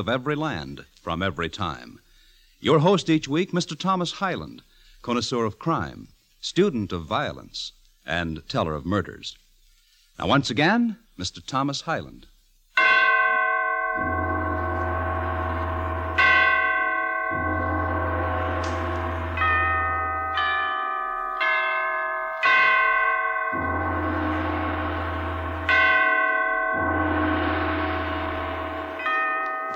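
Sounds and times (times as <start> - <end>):
speech: 0.0 - 2.0, 2.6 - 9.4, 10.2 - 12.3
great church bells tolling slowly and heavily: 12.8 - 29.7.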